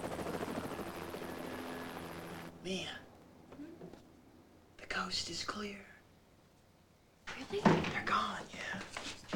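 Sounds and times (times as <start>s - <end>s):
helicopter rotor chop and engine drone: 0.0s - 2.7s
speech: 2.6s - 3.0s, 5.0s - 5.9s, 7.4s - 9.2s.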